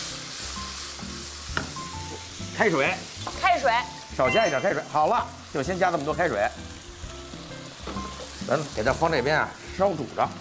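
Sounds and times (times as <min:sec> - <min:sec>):
yellow rice wine sizzling in a hot wok: 0:00.0 - 0:10.3
speech: 0:02.6 - 0:06.8, 0:08.5 - 0:10.3.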